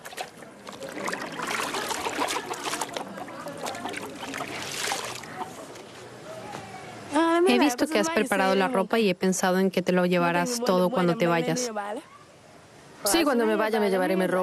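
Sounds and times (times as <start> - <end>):
wet clothes lifted out of water sloshing and splashing: 0.0 - 5.9
speech: 7.5 - 12.1, 13.0 - 14.4.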